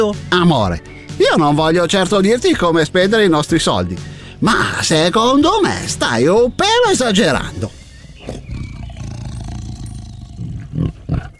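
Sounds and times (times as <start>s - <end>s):
speech: 0.0s - 8.4s
tiger roaring: 8.0s - 11.3s.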